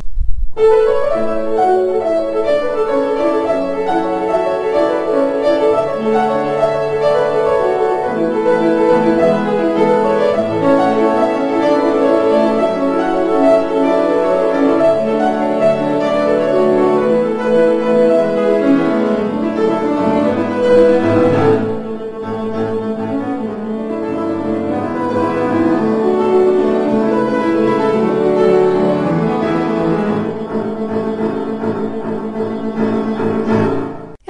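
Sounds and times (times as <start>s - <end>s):
speech: 0.6s - 1.9s
instrumental signature tune of a radio arts programme: 0.6s - 34.2s.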